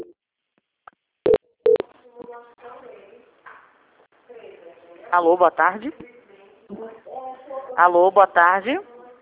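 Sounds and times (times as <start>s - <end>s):
telephone beeps marking a call transfer: 1.3s - 1.8s
speech: 5.1s - 6.2s, 7.8s - 8.9s.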